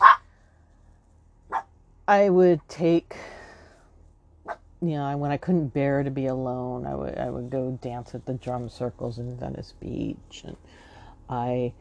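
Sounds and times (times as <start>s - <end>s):
chihuahuas yapping: 0.0s - 0.3s, 1.5s - 1.7s
speech: 2.1s - 3.4s, 4.5s - 11.7s.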